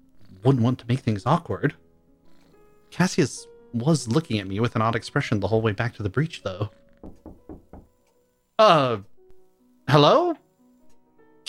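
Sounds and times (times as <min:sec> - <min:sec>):
speech: 0:00.4 - 0:01.8, 0:02.9 - 0:07.2, 0:08.6 - 0:09.1, 0:09.9 - 0:10.4
dull knocks on a door: 0:06.9 - 0:08.0.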